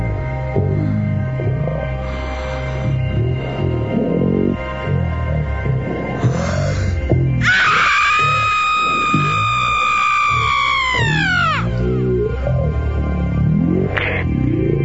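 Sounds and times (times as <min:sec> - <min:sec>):
groaning and moaning vocal sounds: 0:00.0 - 0:14.8
woman screaming during birth: 0:07.4 - 0:11.7.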